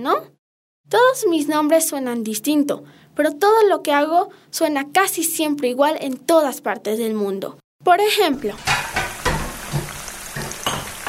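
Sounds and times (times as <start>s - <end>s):
speech: 0.0s - 0.3s, 0.9s - 8.8s
food sizzling as it fries in a pan: 8.4s - 11.0s.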